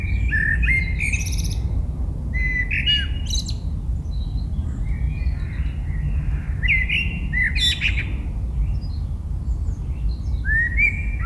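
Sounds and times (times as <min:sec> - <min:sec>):
Eurasian blackbird song with mellow fluting phrases and squeaky twittering: 0:00.0 - 0:11.2.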